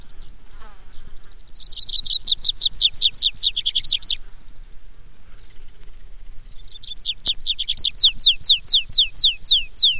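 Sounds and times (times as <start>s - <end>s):
tree pipit singing: 1.6s - 4.2s, 6.2s - 9.9s.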